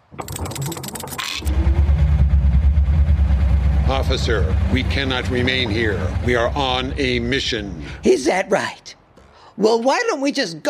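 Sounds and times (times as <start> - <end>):
bus engine cranking with a rattling whir: 0.0 - 8.0
speech: 4.1 - 9.0, 9.6 - 10.6.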